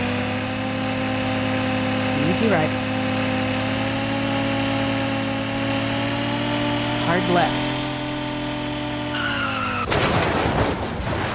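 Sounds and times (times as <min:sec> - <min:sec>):
video-game car engine drone: 0:00.0 - 0:11.3
speech: 0:02.4 - 0:02.9, 0:07.1 - 0:07.7
video-game car tire screech: 0:07.6 - 0:10.4
video-game car crunching crash: 0:09.8 - 0:11.3.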